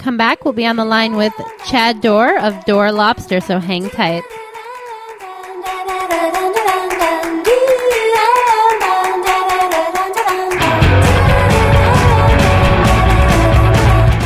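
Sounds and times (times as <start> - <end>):
speech: 0.0 - 4.4
upbeat music track with handclap-like beat played during a break: 0.1 - 14.2
heavy bass: 10.6 - 14.2
sung or melodic line: 10.6 - 14.2.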